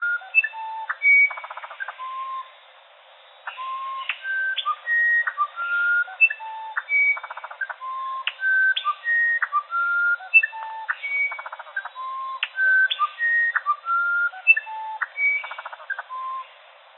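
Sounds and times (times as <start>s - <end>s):
musician wren Cyphorhinus arada singing flute-like whistles and rattles: 0.0s - 16.7s.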